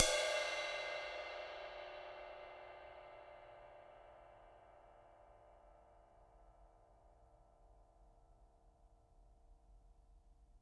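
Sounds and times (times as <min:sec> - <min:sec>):
acoustic ride cymbal: 0:00.0 - 0:07.0.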